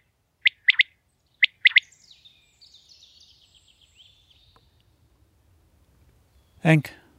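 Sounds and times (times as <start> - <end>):
male common quail three-note song in grassland at Veluwe, Gelderland: 0.0 - 3.3
speech: 6.6 - 7.0.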